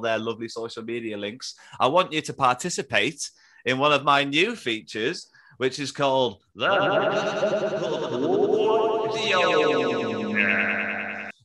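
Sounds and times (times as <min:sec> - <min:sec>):
speech: 0:00.0 - 0:08.3
laughter: 0:06.6 - 0:10.7
feature name jingle with heavy echo effect: 0:08.6 - 0:10.7.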